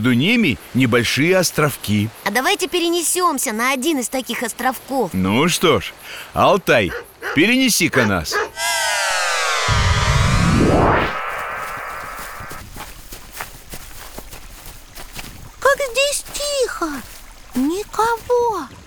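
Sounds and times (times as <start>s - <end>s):
river water babbling at its mouth by the Caspian Sea: 0.0s - 8.5s, 12.8s - 18.8s
speech: 0.0s - 8.8s
repeated chirping bird calls: 6.7s - 8.6s
sweeping electronic whoosh: 8.6s - 12.6s
reeds rustling: 12.2s - 17.8s
splashy crackles: 12.7s - 18.8s.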